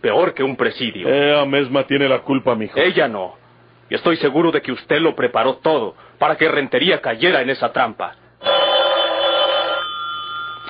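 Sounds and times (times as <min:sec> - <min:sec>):
speech: 0:00.0 - 0:08.2
telephone bell ringing with metallic trill: 0:08.4 - 0:10.6.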